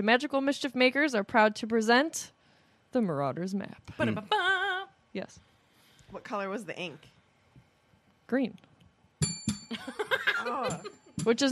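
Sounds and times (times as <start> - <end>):
speech: 0.0 - 4.6, 5.2 - 5.5, 6.1 - 7.2, 8.3 - 11.5
person chuckling and laughing softly: 4.0 - 4.6, 9.7 - 11.1
small bell being struck: 9.2 - 9.7.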